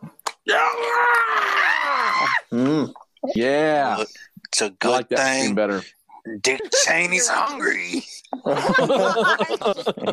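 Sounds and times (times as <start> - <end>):
person voicing a raspy scream imitating a zombie: 0.5 - 2.9
speech: 0.5 - 10.1
laughter: 6.4 - 10.1.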